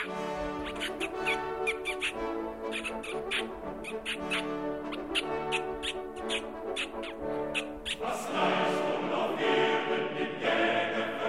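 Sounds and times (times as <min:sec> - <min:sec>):
person on raised hunting stand imitating mouse squeaks to lure a fox: 0:00.0 - 0:08.1
speech: 0:00.1 - 0:11.1.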